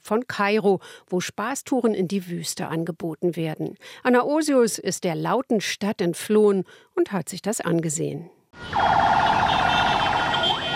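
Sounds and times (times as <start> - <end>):
speech: 0.1 - 9.6
loud car horn blaring in congested traffic: 8.6 - 10.7
rumbling traffic noise: 8.6 - 10.7.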